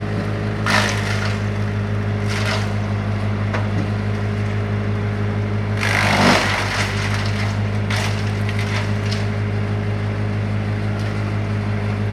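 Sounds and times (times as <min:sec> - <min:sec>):
Vermeer BC150 industrial wood chipper running: 0:00.0 - 0:12.1.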